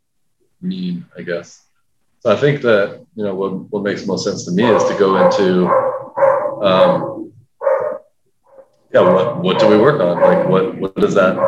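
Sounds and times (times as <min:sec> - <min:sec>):
speech: 0:00.6 - 0:07.3, 0:08.9 - 0:11.4
dog barking in the background: 0:04.6 - 0:11.4.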